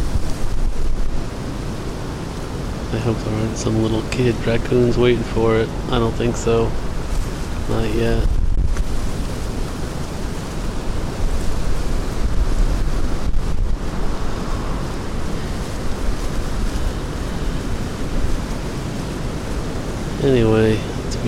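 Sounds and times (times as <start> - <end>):
steady outdoor wind roaring across the microphone: 0.0 - 21.2
speech: 2.9 - 6.9, 7.7 - 8.4, 20.2 - 21.2.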